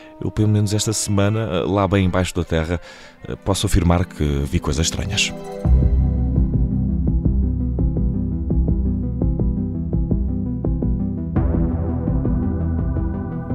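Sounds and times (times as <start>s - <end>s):
speech: 0.2s - 5.8s
pulsing synthesizer TV series opening theme music: 4.1s - 13.5s.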